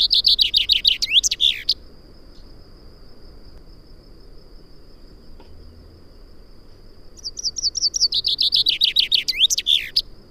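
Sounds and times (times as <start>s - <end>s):
common chaffinch song Fringilla coelebs: 0.0s - 2.6s, 4.6s - 10.2s.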